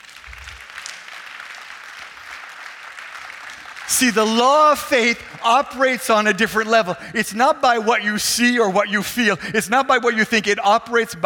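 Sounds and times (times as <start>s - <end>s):
audience clapping: 0.0s - 6.7s
speech: 3.9s - 11.2s.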